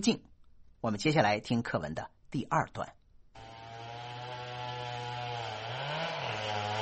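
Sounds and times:
speech: 0.0 - 3.0
chainsaw felling trees in a forest: 3.4 - 6.8.

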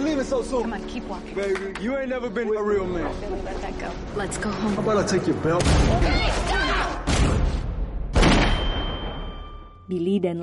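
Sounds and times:
speech: 0.2 - 7.4, 9.9 - 10.4
gunshots in a film scene: 7.0 - 9.3.

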